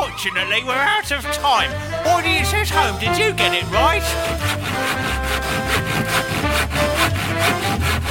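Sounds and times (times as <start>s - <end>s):
speech: 0.2s - 5.1s
handsaw sawing wood: 2.1s - 8.1s.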